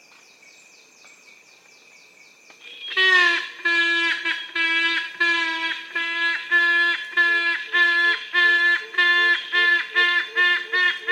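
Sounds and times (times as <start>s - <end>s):
yellow-casqued hornbill honking calls: 2.6s - 11.0s.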